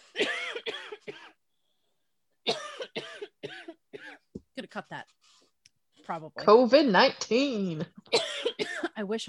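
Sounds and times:
person in a harsh coughing fit: 0.0s - 1.4s, 2.5s - 4.3s, 8.1s - 9.0s
speech: 4.8s - 5.2s, 6.1s - 8.0s, 9.0s - 9.2s.

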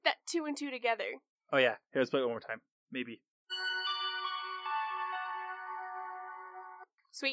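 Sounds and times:
speech: 0.3s - 3.3s, 7.2s - 7.3s
sustained layered musical tones from a movie sound clip: 3.5s - 6.9s.

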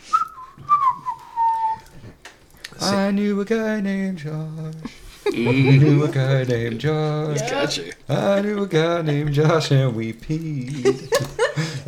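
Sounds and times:
woman whistling a short wavering melody while polishing plates: 0.1s - 1.9s
speech: 2.8s - 11.8s
laughter: 4.8s - 10.0s, 10.6s - 11.8s.

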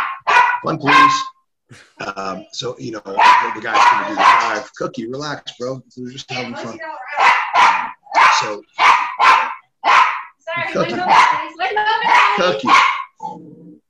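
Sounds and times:
dog barking rapidly and excitedly: 0.0s - 1.4s, 3.1s - 4.7s, 7.1s - 13.4s
speech: 0.6s - 7.3s, 8.4s - 9.4s, 10.7s - 12.9s.

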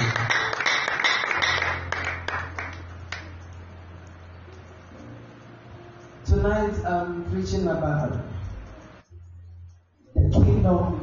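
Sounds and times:
young boy clapping hands during a sermon: 0.0s - 3.3s
speech: 6.7s - 8.3s, 10.6s - 11.0s.

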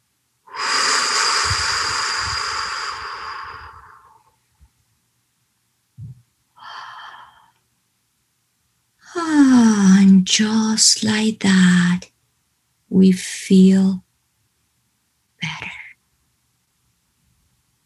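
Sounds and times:
voiced exhale like a sigh: 0.5s - 4.3s
slow deep breathing during a guided relaxation exercise: 0.5s - 4.4s, 6.6s - 7.6s
speech: 10.3s - 12.1s, 12.9s - 14.0s.

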